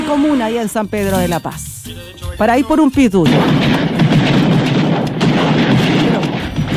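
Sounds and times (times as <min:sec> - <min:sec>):
speech: 0:00.1 - 0:03.9
fireworks exploding at night: 0:03.2 - 0:06.7.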